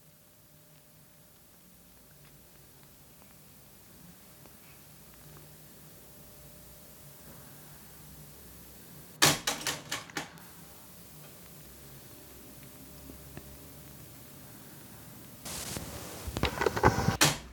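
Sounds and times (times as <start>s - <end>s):
faint tape hiss: 0.0s - 17.4s
cassette deck mechanical clicks and clunks switching tape sides on auto-reverse: 15.5s - 17.5s.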